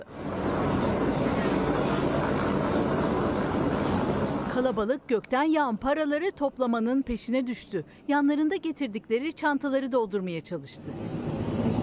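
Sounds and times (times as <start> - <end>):
helicopter flying overhead: 0.0 - 5.1, 10.8 - 11.8
speech: 4.6 - 11.2.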